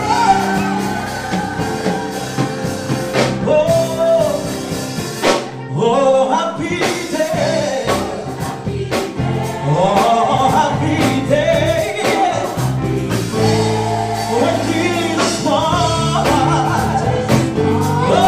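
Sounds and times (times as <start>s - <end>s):
crowd shouting and cheering at an afternoon gospel concert in Boissy: 0.0s - 4.8s, 7.8s - 18.2s
dense continuous gospel concert musical backing: 0.0s - 18.2s.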